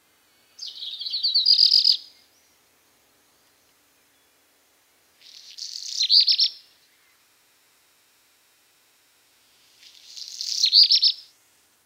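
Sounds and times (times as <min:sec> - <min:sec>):
black redstart singing: 0:00.4 - 0:02.7, 0:05.2 - 0:07.3, 0:09.8 - 0:11.3.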